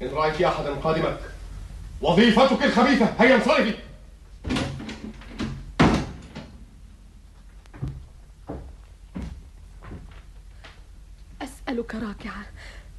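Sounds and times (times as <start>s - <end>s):
speech: 0.0s - 1.4s, 2.0s - 4.6s, 11.9s - 12.8s
door pushed shut with a solid thud: 4.4s - 6.6s.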